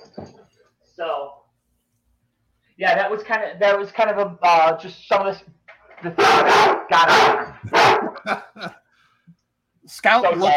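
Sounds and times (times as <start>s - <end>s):
speech: 2.8s - 8.8s, 9.9s - 10.5s
neutered dog wearing a cone collar barking: 6.2s - 8.4s
laughter: 7.5s - 8.8s.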